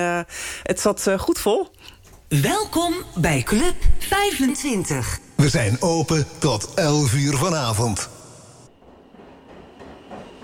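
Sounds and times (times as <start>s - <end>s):
speech: 0.0s - 8.2s
metro train running: 8.7s - 10.4s.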